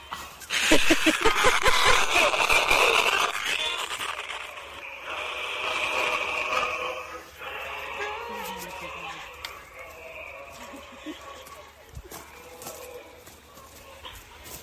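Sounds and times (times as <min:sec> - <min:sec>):
laughter: 0:00.5 - 0:04.9, 0:10.3 - 0:11.8
radio static with garbled crackles between stations: 0:00.5 - 0:06.7.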